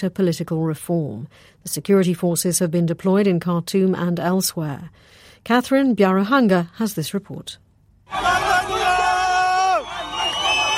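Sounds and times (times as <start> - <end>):
speech: 0.0 - 8.9
overlapping shouts from protest crowd: 8.1 - 10.7.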